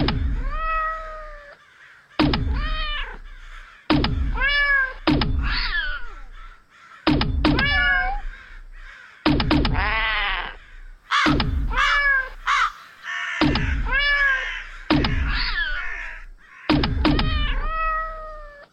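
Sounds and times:
cats meowing and yowling: 0.3s - 1.6s, 2.5s - 3.3s, 4.3s - 6.4s, 7.5s - 8.3s, 9.8s - 12.8s, 13.4s - 16.2s, 17.0s - 18.7s
cat launcher thump: 2.2s - 2.8s, 3.9s - 4.4s, 5.0s - 5.6s, 7.1s - 7.9s, 9.2s - 9.9s, 11.3s - 11.7s, 13.4s - 14.0s, 14.9s - 15.5s, 16.7s - 17.4s.

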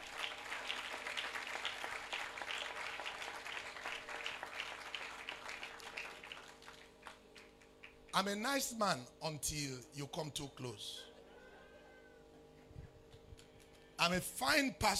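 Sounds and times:
crowd applauding: 0.0s - 8.1s
speech: 8.2s - 11.1s, 14.0s - 14.9s.

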